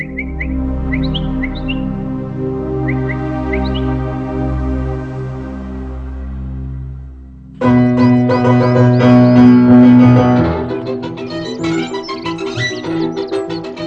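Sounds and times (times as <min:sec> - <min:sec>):
birds chirping and twittering: 0:00.0 - 0:04.2, 0:07.6 - 0:13.8
low steady musical drone: 0:00.0 - 0:13.8.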